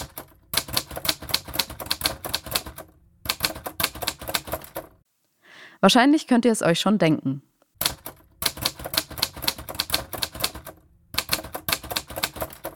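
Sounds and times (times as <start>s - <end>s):
typewriter typing: 0.0s - 5.0s, 7.8s - 12.7s
speech: 5.8s - 7.5s.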